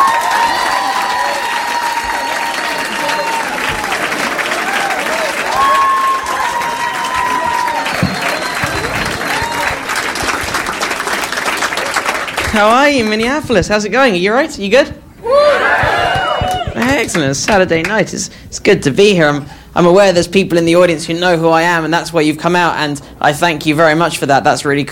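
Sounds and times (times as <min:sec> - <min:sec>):
comedy club audience applause and cheering: 0:00.0 - 0:13.0, 0:15.2 - 0:17.3
speech: 0:12.6 - 0:15.4, 0:16.8 - 0:24.9.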